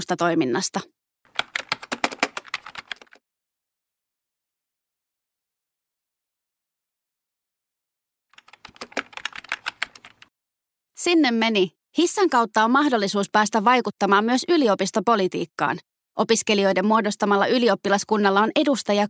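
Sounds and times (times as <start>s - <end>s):
speech: 0.0s - 1.0s, 11.0s - 19.0s
computer keyboard typing details from a registration form: 1.3s - 3.2s, 8.3s - 10.3s.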